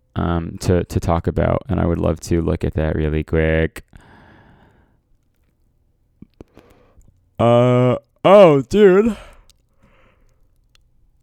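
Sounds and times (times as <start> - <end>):
speech: 0.2 - 4.0, 7.4 - 9.3
soft mouth clicks and smacks: 6.2 - 7.3, 9.1 - 11.2
drawn-out breathy yawn: 7.4 - 9.5.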